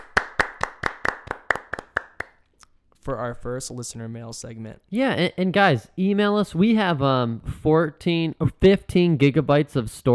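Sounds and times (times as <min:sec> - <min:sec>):
hands clapping in a steady rhythm: 0:00.0 - 0:02.7
speech: 0:03.1 - 0:10.1.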